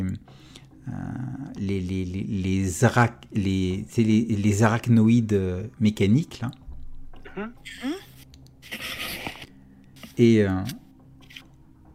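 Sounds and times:
speech: 1.6s - 6.6s, 7.4s - 8.0s, 10.2s - 10.8s
woman making brief wordless vocal sounds: 7.2s - 8.1s
pen scratching across paper while drawing characters: 8.1s - 10.2s.

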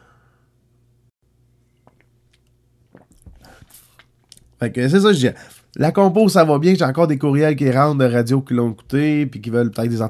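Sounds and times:
steady low hum: 0.0s - 10.0s
person taking a small sip of a drink: 1.6s - 4.5s
speech: 4.6s - 10.0s.

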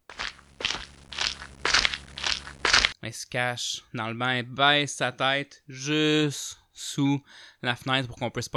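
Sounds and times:
footsteps crunching over dry forest ground: 0.0s - 3.0s
speech: 3.1s - 8.5s.

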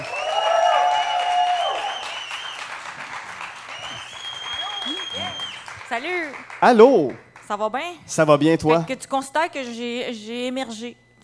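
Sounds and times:
audience whooping: 0.0s - 5.9s
audience clapping: 0.0s - 7.6s
speech: 6.0s - 11.0s.

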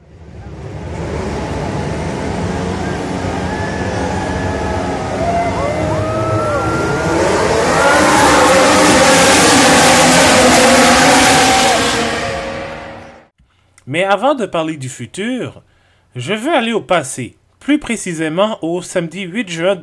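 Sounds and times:
several racing car engines revving at a race start: 0.0s - 13.3s
speech: 14.0s - 19.8s.

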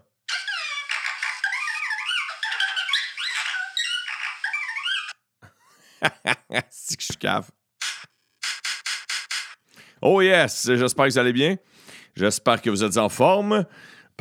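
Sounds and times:
robot burbling warbling electronic beeps and chirps: 0.3s - 5.2s, 7.8s - 9.6s
laughter: 0.3s - 7.1s
speech: 6.0s - 7.6s, 10.0s - 14.1s
sharp clicks: 7.8s - 9.7s.

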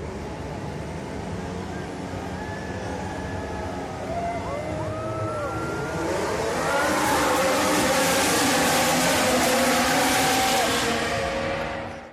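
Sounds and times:
race car engines revving at the Italian Grand Prix at Monza: 0.0s - 12.1s.

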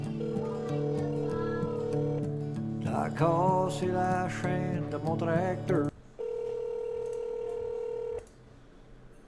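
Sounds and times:
electronic telephone keypad tone: 0.2s - 2.3s, 6.2s - 8.2s
speech: 3.0s - 5.9s.

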